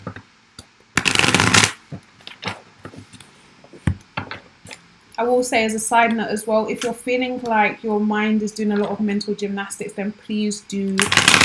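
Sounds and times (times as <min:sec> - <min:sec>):
deck of tarot cards being shuffled: 0:01.0 - 0:03.4
speech: 0:05.2 - 0:11.4.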